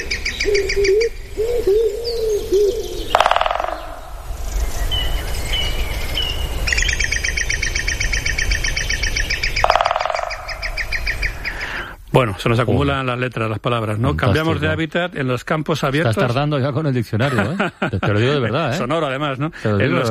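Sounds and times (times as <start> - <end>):
European green woodpecker laughing call: 0.0 - 4.3, 6.8 - 11.9
steady outdoor noise: 0.0 - 20.0
speech: 12.2 - 20.0.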